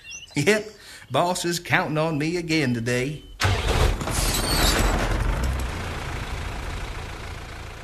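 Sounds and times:
speech: 0.4s - 3.3s
large truck engine idling: 4.6s - 7.8s.

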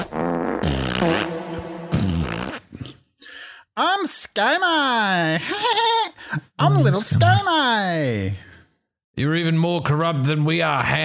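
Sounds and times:
person imitating flatulence with their mouth: 0.0s - 3.0s
speech: 3.8s - 8.5s, 9.2s - 11.0s.

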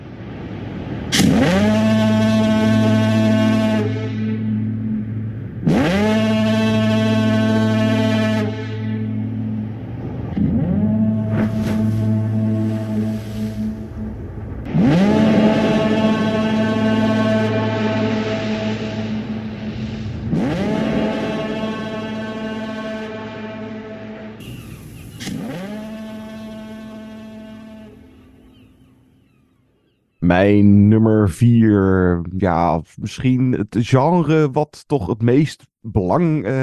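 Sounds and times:
deep foghorn blasts in a film: 0.0s - 29.1s
speech: 30.4s - 36.6s.

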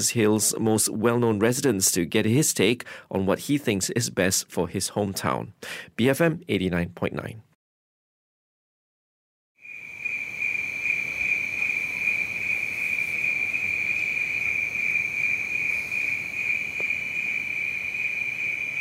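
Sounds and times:
speech: 0.0s - 7.5s
cicadas droning in the rainforest on a hilltop before sunrise: 9.6s - 18.7s.

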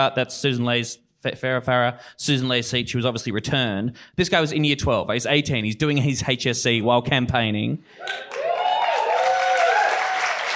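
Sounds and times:
speech: 0.0s - 8.5s
crowd applauding: 8.0s - 10.5s.

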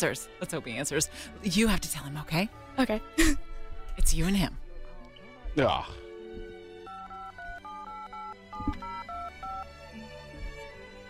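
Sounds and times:
speech: 0.0s - 4.6s, 5.6s - 6.5s
touch-tone beeps of a phone number being dialed: 6.9s - 9.7s.

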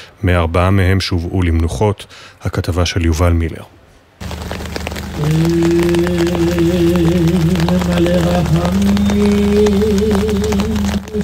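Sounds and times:
speech: 0.2s - 4.3s, 5.2s - 11.2s
heavy pouring rain: 4.1s - 11.2s
single voice chanting long wavering held notes at a funeral: 5.0s - 11.2s.

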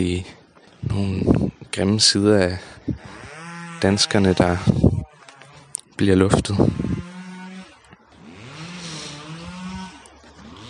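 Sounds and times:
speech: 0.0s - 3.2s, 3.8s - 5.0s, 6.0s - 7.1s
chainsaw revving while pruning garden branches: 2.6s - 10.6s.

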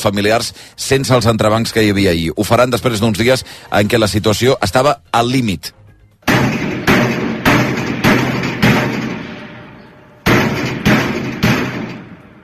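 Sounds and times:
speech: 0.0s - 5.8s
heavy banging by prison inmates in a reverberant space: 6.3s - 12.4s.

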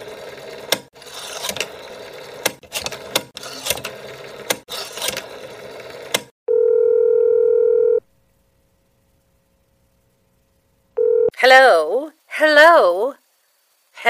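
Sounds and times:
mechanical whirring and clicking of a phone being dialed: 0.0s - 8.0s
steady loud telephone dial tone: 6.5s - 8.0s, 11.0s - 11.4s
speech: 11.4s - 13.2s.

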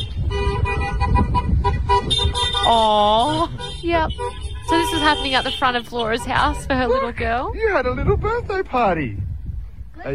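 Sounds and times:
car horns beeping in a convoy of cars driving past: 0.0s - 7.4s
low rumble of car engines in a convoy: 0.0s - 10.1s
speech: 2.7s - 9.2s, 10.0s - 10.1s.

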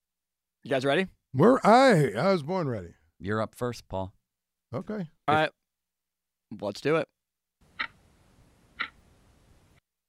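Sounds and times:
speech: 0.6s - 5.6s, 6.5s - 7.1s
faint steady hiss: 7.6s - 9.8s
quiz game clock ticks: 8.8s - 9.0s.

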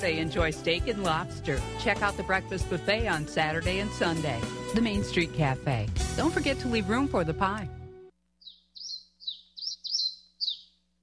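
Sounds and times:
speech: 0.0s - 7.8s
bird chirping in bright high notes: 8.4s - 10.9s.

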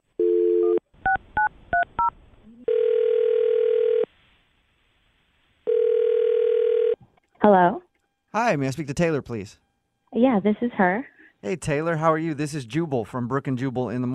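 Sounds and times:
telephone dial tone: 0.2s - 0.8s, 2.7s - 4.1s, 5.7s - 7.0s
long loud telephone ringing tones: 0.2s - 4.1s, 5.7s - 7.0s
speech: 8.4s - 14.1s.

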